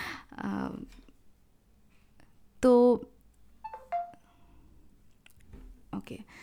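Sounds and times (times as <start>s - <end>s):
speech: 2.6s - 3.1s, 6.0s - 6.4s
mobile phone notification tone chiming: 3.7s - 4.2s.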